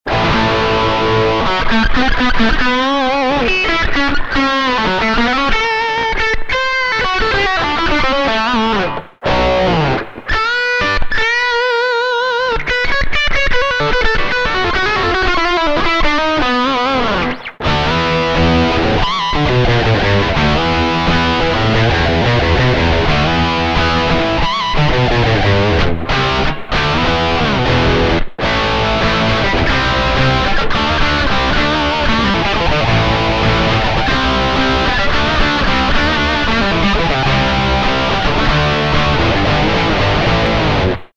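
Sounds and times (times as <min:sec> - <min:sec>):
guitar with dirty tone on Tesla Shark bridge pickup: 0:00.0 - 0:41.1.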